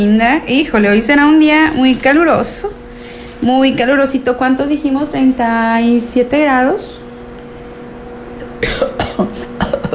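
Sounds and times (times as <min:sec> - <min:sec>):
speech: 0:00.0 - 0:02.8, 0:03.4 - 0:07.0
person coughing harshly: 0:08.6 - 0:09.9.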